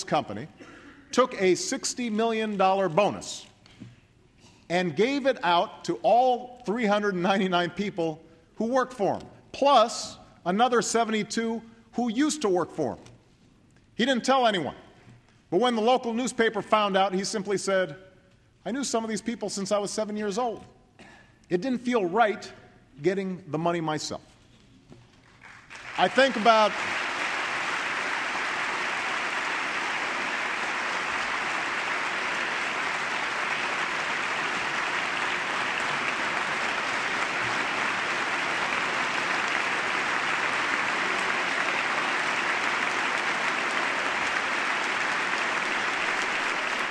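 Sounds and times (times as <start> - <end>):
speech: 0.1 - 3.5, 4.7 - 13.1, 14.0 - 14.8, 15.5 - 18.0, 18.6 - 20.8, 21.5 - 24.3, 26.0 - 27.0
applause in a legislative chamber: 25.2 - 46.8.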